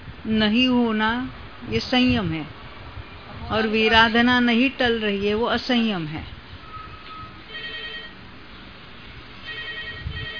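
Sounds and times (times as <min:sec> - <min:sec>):
noisy background: 0:00.0 - 0:10.3
speech: 0:00.2 - 0:02.6, 0:03.5 - 0:06.3
mobile phone ringtone of high electronic tones: 0:07.2 - 0:08.2, 0:09.4 - 0:10.3.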